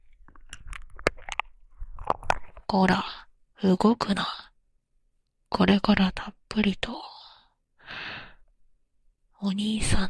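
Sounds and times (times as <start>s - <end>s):
wet mouth sounds nibbling and chewing on an ear: 0.0s - 2.7s
speech: 2.7s - 4.5s, 5.5s - 7.1s, 9.4s - 10.0s.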